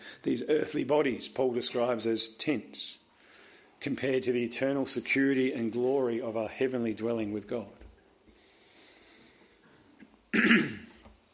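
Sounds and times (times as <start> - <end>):
speech: 0.2 - 3.0, 3.8 - 7.8, 10.3 - 10.8
person with asthma clearing throat after using a Ventolin inhaler: 10.3 - 11.0.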